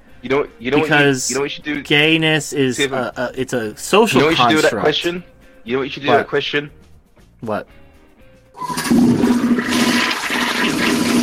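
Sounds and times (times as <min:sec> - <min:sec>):
speech: 0:00.2 - 0:06.8, 0:07.4 - 0:07.8, 0:08.6 - 0:09.8
toilet flushing: 0:08.6 - 0:11.2.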